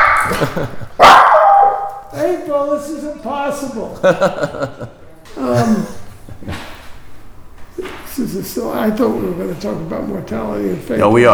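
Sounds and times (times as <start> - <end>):
dog barking: 0.0 - 2.1
laughter: 0.0 - 11.3
speech: 0.4 - 1.2, 2.1 - 6.6, 8.2 - 11.3.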